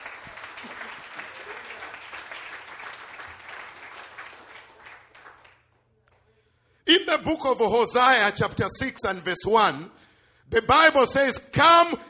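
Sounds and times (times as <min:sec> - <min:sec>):
crowd clapping hands in dense applause: 0:00.0 - 0:05.9
speech: 0:07.1 - 0:12.0.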